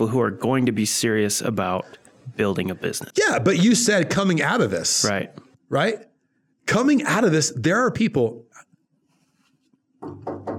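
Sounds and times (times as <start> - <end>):
speech: 0.0 - 6.1, 6.7 - 8.4
knuckles knocking on a wooden surface: 10.0 - 10.5.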